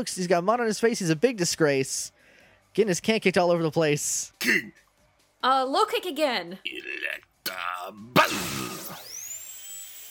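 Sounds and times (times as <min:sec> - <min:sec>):
speech: 0:00.0 - 0:04.8, 0:05.4 - 0:09.0
short grunting sound: 0:06.7 - 0:09.0
synthetic game-style horn drill attack effect in a battle: 0:08.2 - 0:10.0.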